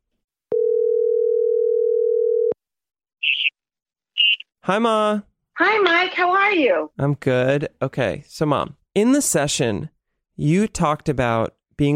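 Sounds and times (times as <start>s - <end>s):
telephone ringing tone: 0.5s - 2.6s
speech: 4.7s - 11.9s.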